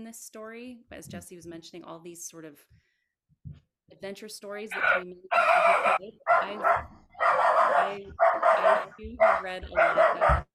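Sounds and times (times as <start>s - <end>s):
speech: 0.0s - 7.0s, 7.7s - 10.5s
puppy barking in high yappy bursts: 4.8s - 10.5s.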